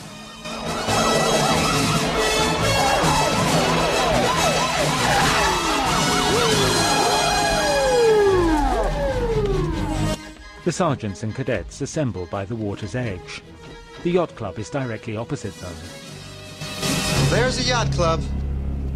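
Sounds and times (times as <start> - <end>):
police patrol car sirens wailing in city streets: 0.0 - 10.2
speech: 10.6 - 16.1, 17.3 - 18.4.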